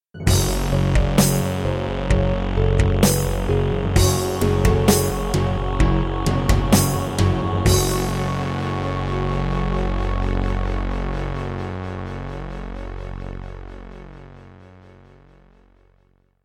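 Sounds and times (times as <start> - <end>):
Yamaha MU500 tone generator in GS mode: 0.2 - 12.6.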